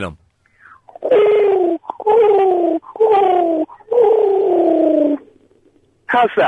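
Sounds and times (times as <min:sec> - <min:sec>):
speech: 0:00.0 - 0:00.2, 0:01.0 - 0:01.4, 0:02.0 - 0:03.8, 0:06.1 - 0:06.4
person imitating a pigeon cooing: 0:00.9 - 0:05.3.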